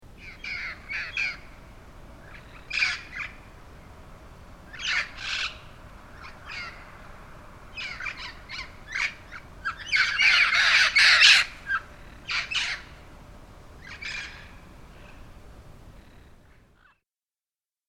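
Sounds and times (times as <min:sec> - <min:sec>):
red crowned parrots in Pasadena: 0:00.2 - 0:01.4, 0:02.3 - 0:03.4, 0:04.7 - 0:06.9, 0:07.7 - 0:13.0, 0:13.8 - 0:15.2.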